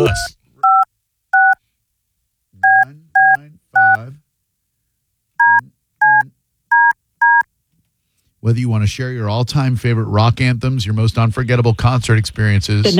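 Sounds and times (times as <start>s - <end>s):
speech: 0.0s - 0.4s, 8.4s - 12.9s
telephone keypad tones as a number is dialed: 0.0s - 0.8s, 1.4s - 1.6s, 2.6s - 4.0s, 5.4s - 7.4s.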